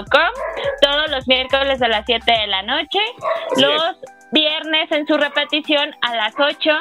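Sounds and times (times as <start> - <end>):
speech: 0.0 - 6.8
dog whining: 0.4 - 0.9, 3.2 - 3.9
dog giving a sharp bark or yelp: 0.4 - 1.0, 3.2 - 3.9, 5.2 - 6.7.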